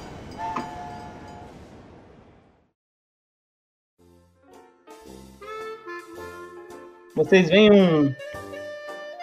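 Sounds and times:
train rumbling and screeching as it slows to a stop: 0.0 - 2.5
speech: 7.2 - 8.3.

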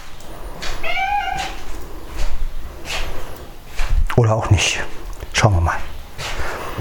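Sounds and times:
household noises: 0.0 - 6.7
soft rustling: 0.0 - 6.7
cat meowing expecting food: 0.6 - 1.8
speech: 4.2 - 5.9.

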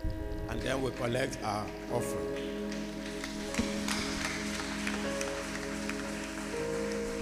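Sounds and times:
sustained droning musical tone: 0.0 - 7.1
speech: 0.5 - 2.5
church audience clapping hands: 1.6 - 7.1.

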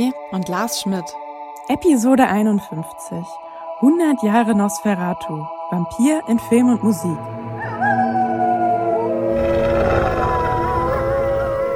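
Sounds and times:
speech: 0.0 - 8.0
wolves howling in chorus: 7.4 - 11.7.

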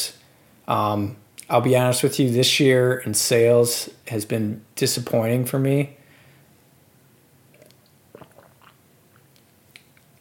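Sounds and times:
quiet room hiss: 0.0 - 10.1
speech: 0.7 - 6.0
soft gulps and swallow: 7.5 - 8.8
person sipping water: 7.5 - 10.1
wet mouth clicks: 7.5 - 10.1.

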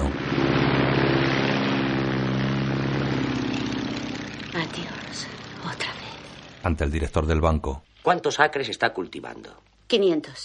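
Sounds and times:
biplane propeller engine roaring during takeoff: 0.0 - 7.2
speech: 4.6 - 6.0, 6.6 - 10.4.

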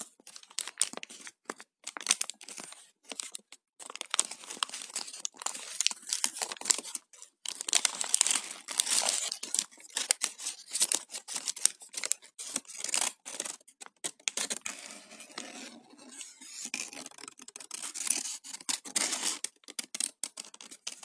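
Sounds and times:
paper being handled, crinkling and rustling: 0.2 - 21.0
paper crumpling: 1.9 - 13.6.

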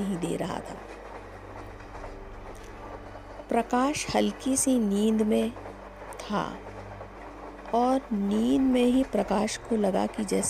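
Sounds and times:
train rolling along the rails: 0.0 - 10.4
train wheels clattering: 0.0 - 10.4
speech: 0.1 - 1.0, 3.5 - 5.7, 6.3 - 6.7, 7.7 - 10.4.

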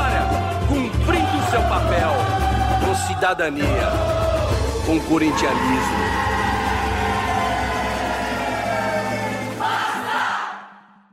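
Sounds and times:
group singing of a samba school samba-enredo theme song: 0.0 - 11.0
speech: 3.0 - 4.2, 4.9 - 6.4.

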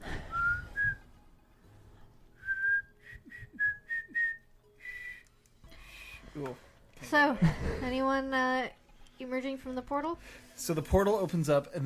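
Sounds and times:
person whistling a tune: 0.3 - 1.0, 2.4 - 5.3
speech: 6.4 - 11.8.

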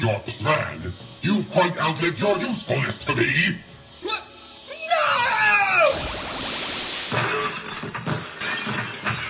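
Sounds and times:
speech: 0.0 - 3.7
rising zap of energy beams shot from a radioactive monster's eyes: 5.8 - 7.3
crystal creature shattering into pieces: 5.9 - 9.0
glassy crystal fragments tinkling and clattering as debris settles: 6.6 - 9.2.

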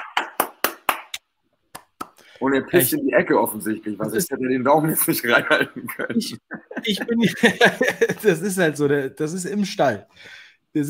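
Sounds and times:
person clapping in a studio: 0.0 - 2.3
speech: 2.4 - 10.8
laughter: 4.7 - 8.6.

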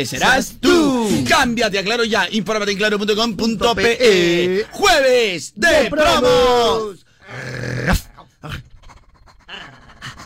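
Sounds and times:
speech: 0.0 - 8.6
dog panting: 8.7 - 10.2.

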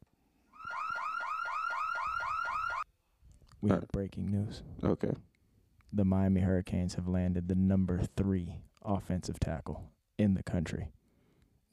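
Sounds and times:
loud electronic house fire alarm siren whooping: 0.5 - 2.9
speech: 3.6 - 5.3, 5.9 - 11.0.

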